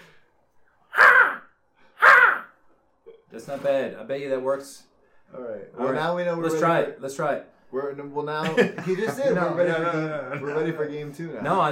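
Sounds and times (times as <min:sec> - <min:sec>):
person imitating a crow's caw: 0:00.9 - 0:02.6
speech: 0:03.3 - 0:11.7
laughter: 0:08.4 - 0:10.9.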